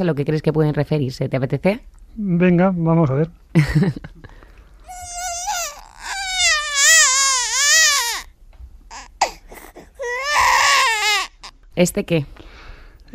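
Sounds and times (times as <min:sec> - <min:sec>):
speech: 0:00.0 - 0:04.3, 0:11.8 - 0:12.5
baby crying: 0:04.8 - 0:11.6.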